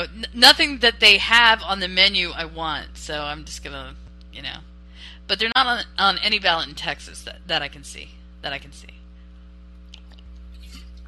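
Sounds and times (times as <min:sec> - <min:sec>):
speech: 0:00.0 - 0:09.0
steady low electrical hum: 0:00.0 - 0:11.0
person gulping a drink: 0:09.8 - 0:11.0.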